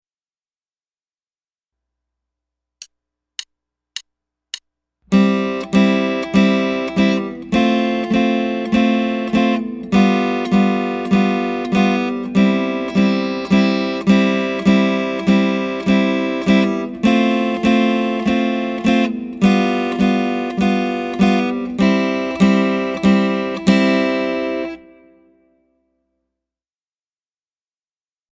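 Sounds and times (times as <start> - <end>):
small chord etude: 5.1 - 25.4.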